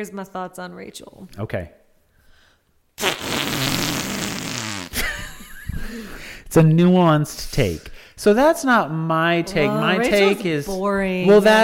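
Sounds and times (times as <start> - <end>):
speech: 0.0 - 1.8, 6.5 - 11.6
loud buzzy raspy fart noise: 3.0 - 5.1.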